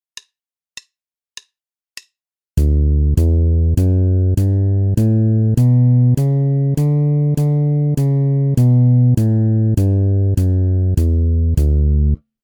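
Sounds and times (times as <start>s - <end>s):
bass playing a D major scale exercise: 2.6s - 12.2s.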